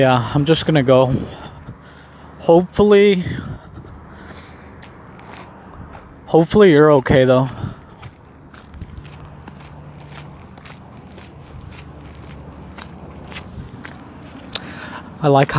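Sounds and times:
speech: 0.0s - 1.4s, 2.4s - 3.5s, 6.3s - 7.7s, 15.2s - 15.5s
calm hum: 0.0s - 15.5s
footsteps walking outdoors at night: 3.8s - 6.4s, 7.3s - 14.7s.

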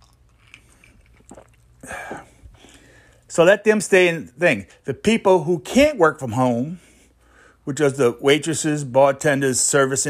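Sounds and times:
slurp and swallow: 0.0s - 2.8s
person sipping a drink: 0.0s - 3.2s
speech: 3.4s - 6.9s, 7.7s - 10.0s.

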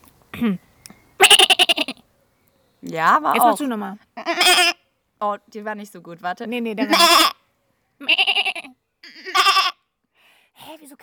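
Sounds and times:
speech: 0.4s - 0.7s, 2.9s - 7.3s
person imitating a bleating goat kid: 1.2s - 2.0s, 4.2s - 4.8s, 6.8s - 7.4s, 8.0s - 9.8s.

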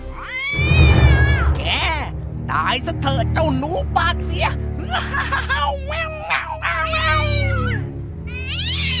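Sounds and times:
angry cat yowling as it charges at a mouse in a cave: 0.1s - 1.6s, 5.5s - 8.9s
speech: 2.7s - 7.2s
laughter: 4.8s - 7.2s.

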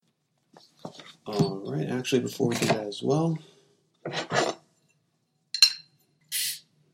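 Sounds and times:
glasses clinking in a toast: 1.3s - 1.7s, 5.5s - 6.0s
speech: 1.3s - 4.4s.

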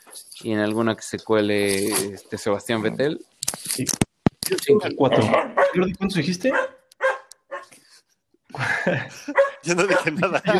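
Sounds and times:
speech: 0.2s - 6.8s, 8.6s - 10.5s
laughter: 4.5s - 6.3s, 8.6s - 10.5s
dog barking: 5.2s - 5.8s, 6.5s - 7.7s, 9.3s - 10.2s.

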